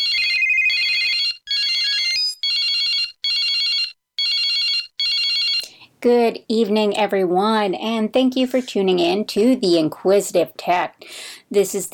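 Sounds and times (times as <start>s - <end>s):
electronic telephone ringing: 0.0s - 5.7s
speech: 6.0s - 11.9s.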